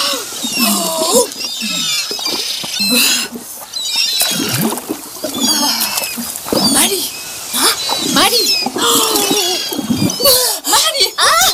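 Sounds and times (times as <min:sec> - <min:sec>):
high-pitched whimpering cries and squeals: 0:00.0 - 0:04.7, 0:05.3 - 0:10.7
busy splashy background: 0:00.0 - 0:11.5.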